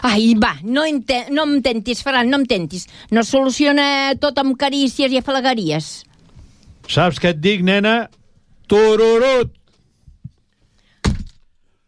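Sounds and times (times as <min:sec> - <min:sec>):
speech: 0:00.0 - 0:06.1, 0:06.9 - 0:09.6
door slammed shut hard: 0:11.0 - 0:11.4.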